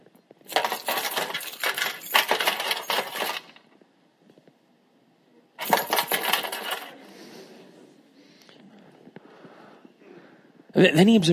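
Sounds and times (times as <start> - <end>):
coins pouring into a metal container in a temple treasury: 0.5 - 3.6, 5.6 - 6.9.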